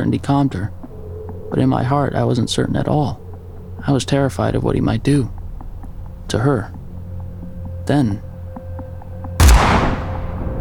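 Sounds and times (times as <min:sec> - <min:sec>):
speech: 0:00.0 - 0:00.8, 0:01.5 - 0:03.2, 0:03.8 - 0:05.4, 0:06.3 - 0:06.8, 0:07.9 - 0:08.3
shotgun blast: 0:09.4 - 0:10.6.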